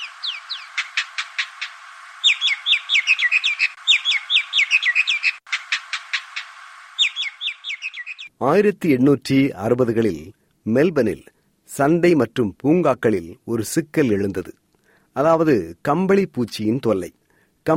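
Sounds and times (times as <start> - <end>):
Indian myna calls: 0.0 - 8.3
speech: 8.4 - 14.6, 15.2 - 17.7.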